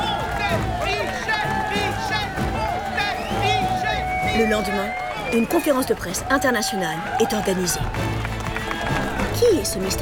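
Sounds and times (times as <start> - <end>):
dense excited crowd shouting and cheering: 0.0 - 9.9
speech: 0.5 - 0.8, 4.4 - 8.2, 9.4 - 9.9
shrill whistle-like tones from a crowd: 1.8 - 5.9.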